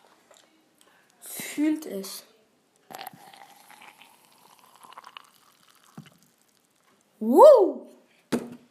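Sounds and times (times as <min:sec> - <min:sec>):
speech: 0:01.6 - 0:02.3, 0:07.2 - 0:07.8
milk pouring into a glass: 0:02.9 - 0:07.1.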